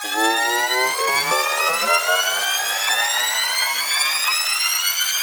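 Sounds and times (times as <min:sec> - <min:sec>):
rising sound effect at 150 BPM: 0:00.0 - 0:05.1.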